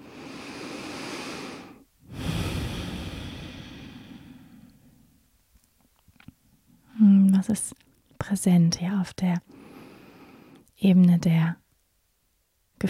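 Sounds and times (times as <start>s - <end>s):
deep slow breaths during a guided meditation exercise: 0.0s - 5.2s, 9.5s - 10.7s
speech: 7.4s - 9.6s, 10.8s - 11.6s.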